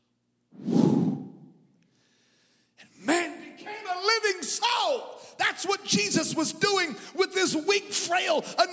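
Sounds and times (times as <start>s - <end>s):
forceful breath blown out into the microphone: 0.6s - 2.7s
speech: 4.5s - 8.7s.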